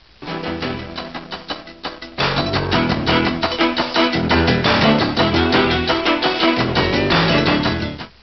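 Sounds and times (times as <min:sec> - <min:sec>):
cheesy lo-fi news intro sound effects: 0:00.0 - 0:08.2.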